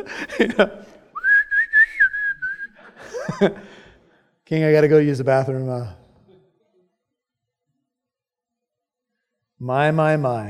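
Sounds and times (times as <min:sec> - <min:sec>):
laughter: 0:00.0 - 0:01.0, 0:02.7 - 0:03.9
speech: 0:00.0 - 0:01.0, 0:03.2 - 0:03.7, 0:04.5 - 0:06.0, 0:09.6 - 0:10.4
person whistling a short wavering tune: 0:01.2 - 0:02.8.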